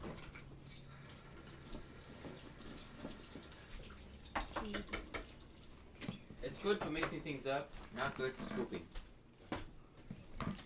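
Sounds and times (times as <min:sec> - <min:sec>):
water running from a kitchen tap into a sink: 0:01.4 - 0:06.1
speech: 0:04.6 - 0:05.0, 0:06.6 - 0:09.0.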